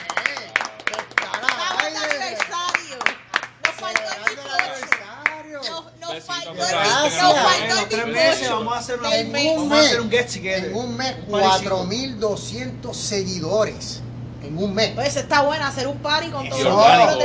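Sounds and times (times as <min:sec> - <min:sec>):
hand claps celebrating a group's first month: 0:00.0 - 0:05.4
speech: 0:06.5 - 0:17.2.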